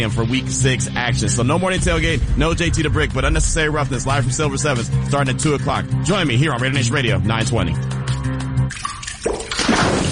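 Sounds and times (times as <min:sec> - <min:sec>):
speech: 0:00.0 - 0:08.0
water dripping: 0:08.1 - 0:10.0.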